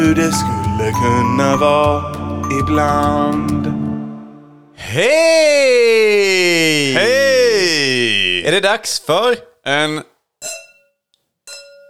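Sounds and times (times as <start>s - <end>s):
speech: 0.1s - 3.8s, 4.8s - 10.6s
drinking glasses clinking in a toast: 10.4s - 11.8s.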